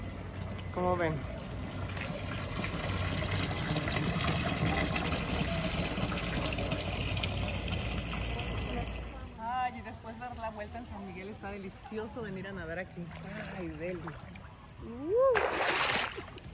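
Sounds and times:
speech: 0.8 - 1.3, 9.8 - 16.4
water gushing from a laundry washing spout: 1.4 - 9.2.

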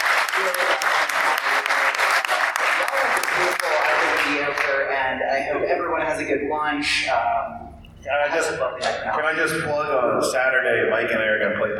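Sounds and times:
audience applause: 0.0 - 4.8
speech: 5.1 - 11.7.

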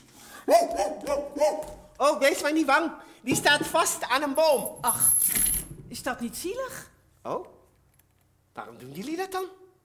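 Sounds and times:
dog barking: 0.5 - 1.8
speech: 0.5 - 5.4, 6.0 - 7.6, 8.6 - 9.6.

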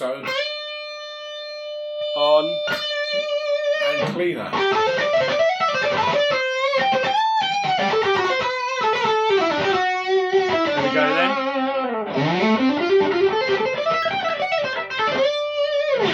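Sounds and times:
electric guitar lead through an overdrive pedal: 0.0 - 16.1
speech: 2.4 - 5.0.

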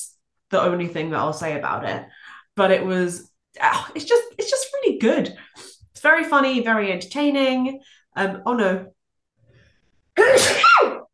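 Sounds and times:
speech: 0.0 - 9.0, 10.2 - 10.9
loud forceful sneeze: 10.2 - 11.1.

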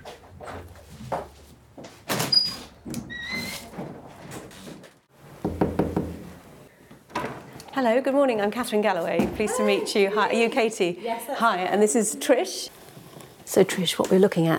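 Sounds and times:
knocking on big red wooden front door: 5.4 - 6.3
speech: 7.8 - 12.8, 13.5 - 14.5.

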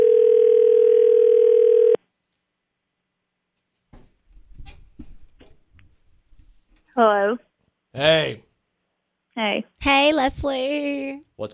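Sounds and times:
steady loud telephone dial tone during outgoing call: 0.0 - 2.0
speech: 7.3 - 8.4, 9.4 - 11.5.

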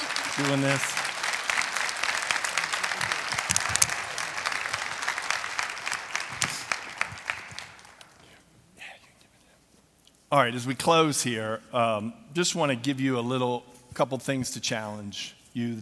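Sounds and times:
audience applause: 0.0 - 8.2
speech: 0.4 - 1.0, 10.3 - 15.8.

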